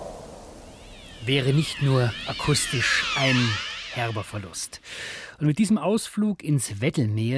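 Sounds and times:
seal call in the Wadden Sea: 0.7s - 4.8s
speech: 1.3s - 7.3s.

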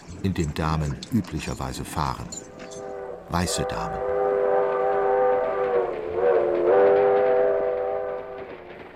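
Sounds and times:
departing train rumbling along the rails: 0.0s - 8.9s
speech: 0.2s - 2.4s, 3.3s - 4.1s
long sustained train horn-like tone: 2.7s - 8.7s.

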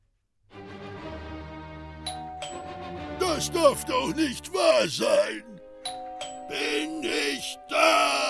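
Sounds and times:
doorbell chime: 2.1s - 2.8s, 5.8s - 6.6s
speech: 3.4s - 5.5s, 6.5s - 8.2s.

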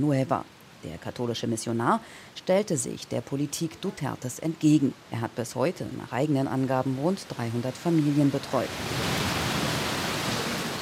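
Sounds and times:
speech: 0.0s - 9.3s
heavy rain pouring down: 7.4s - 10.8s.

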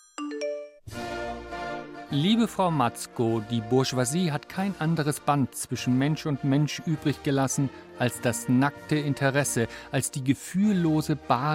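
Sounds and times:
phone ringtone with chiming notes and electronic melody: 0.0s - 0.8s
speech: 2.1s - 11.5s.

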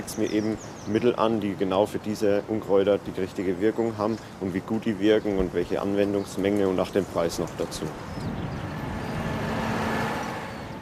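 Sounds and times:
speech: 0.0s - 8.4s
tractor pulling a large field sprayer across a wheat field: 7.9s - 10.7s.

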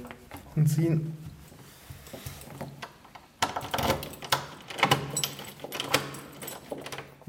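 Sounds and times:
speech: 0.6s - 1.2s
key turning in a door lock: 2.4s - 7.2s.

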